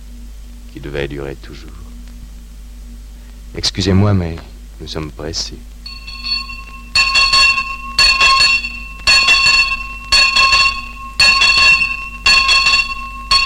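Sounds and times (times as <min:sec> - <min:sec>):
speech: 0:00.7 - 0:01.9, 0:03.5 - 0:05.7
school bell ringing: 0:05.9 - 0:13.4.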